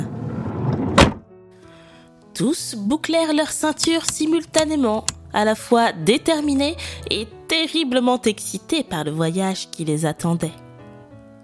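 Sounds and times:
van sliding door rumbling along its track and slamming shut: 0:00.1 - 0:01.3
speech: 0:02.4 - 0:10.6.

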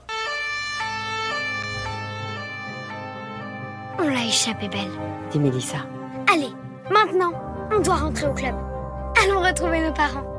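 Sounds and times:
police car siren wailing as the car drives away: 0:00.0 - 0:05.4
speech: 0:04.2 - 0:06.4, 0:07.2 - 0:10.3.

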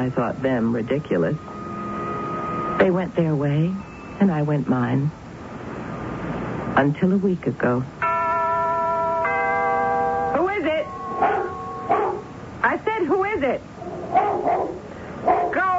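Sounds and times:
speech: 0:00.0 - 0:01.6, 0:02.8 - 0:05.2, 0:06.8 - 0:08.0, 0:13.4 - 0:14.8
steady sustained tone: 0:00.0 - 0:04.6, 0:08.4 - 0:13.0
dog barking in yappy bursts: 0:11.2 - 0:12.3, 0:13.9 - 0:15.6.

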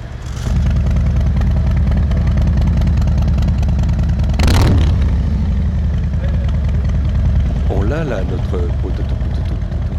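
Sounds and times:
motorcycle with 114 engine idling with exhaust valves open: 0:00.0 - 0:09.9.

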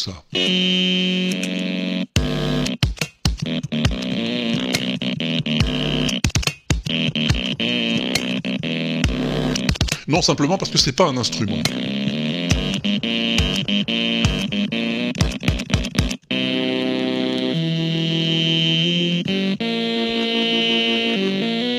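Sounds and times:
speech: 0:00.0 - 0:01.6, 0:10.1 - 0:11.9
stepper motor whirring out a tune: 0:00.3 - 0:21.7.

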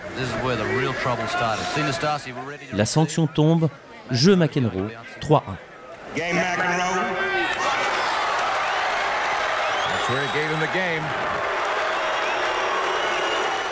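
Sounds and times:
large tennis stadium crowd roaring: 0:00.0 - 0:02.4, 0:05.9 - 0:13.7
speech: 0:00.2 - 0:07.7, 0:10.1 - 0:11.4
individual spectators shouting and jeering: 0:06.3 - 0:13.7.

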